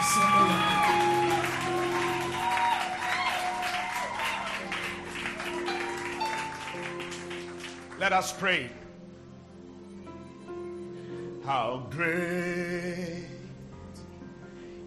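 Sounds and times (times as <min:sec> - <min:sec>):
cheering voices: 0:00.0 - 0:07.0
church audience clapping during a Sunday morning service: 0:00.0 - 0:08.4
speech: 0:08.0 - 0:08.8, 0:11.5 - 0:13.4.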